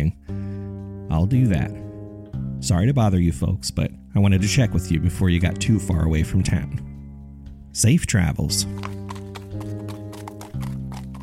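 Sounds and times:
speech: 0:01.1 - 0:01.8, 0:02.6 - 0:06.9, 0:07.7 - 0:09.0
horse galloping away: 0:08.6 - 0:11.2.

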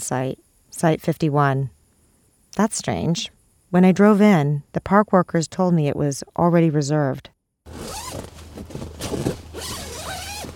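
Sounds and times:
speech: 0:00.1 - 0:01.8, 0:02.6 - 0:09.3
tent zipper being zipped closed from inside at a park campsite: 0:07.7 - 0:10.5.

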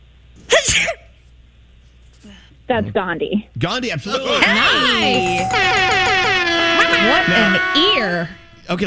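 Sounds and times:
person sneezing: 0:00.5 - 0:01.1
speech: 0:00.6 - 0:01.1, 0:02.2 - 0:06.2, 0:07.0 - 0:08.8.

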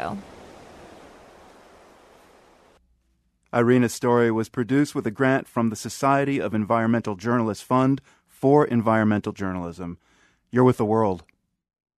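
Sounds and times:
speech: 0:00.0 - 0:00.4, 0:03.5 - 0:11.3
ocean waves breaking near the shore at La Boca, Puerto Rico: 0:00.0 - 0:02.8.

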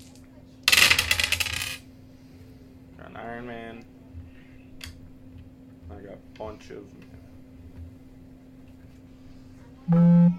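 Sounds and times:
dice being re-rolled: 0:00.0 - 0:01.8
speech: 0:03.0 - 0:04.0, 0:05.9 - 0:07.2.

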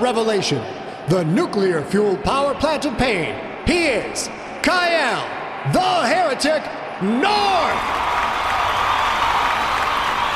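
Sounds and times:
speech: 0:00.0 - 0:08.0
large crowd roaring and cheering: 0:03.1 - 0:10.3.

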